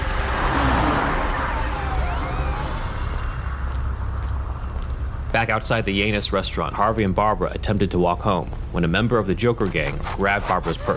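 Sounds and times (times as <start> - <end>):
car engine roaring while driving off: 0.0 - 5.3
speech: 5.4 - 10.9.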